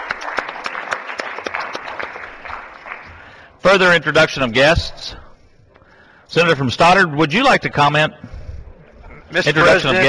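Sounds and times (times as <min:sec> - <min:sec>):
group applauding a guest: 0:00.0 - 0:03.5
speech: 0:03.6 - 0:05.2, 0:06.3 - 0:08.2, 0:09.3 - 0:10.0.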